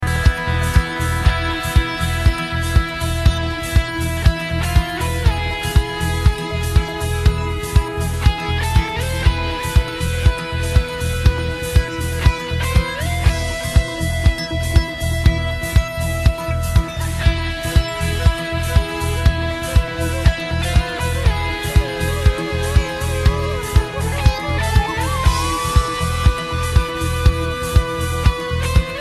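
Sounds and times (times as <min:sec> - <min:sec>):
lead guitar ringtone: 0:00.0 - 0:29.0.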